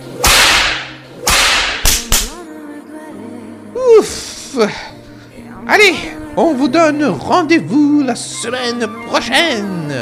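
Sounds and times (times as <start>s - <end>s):
whip cracks: 0.2s - 2.4s
speech: 4.0s - 4.9s, 5.7s - 10.0s.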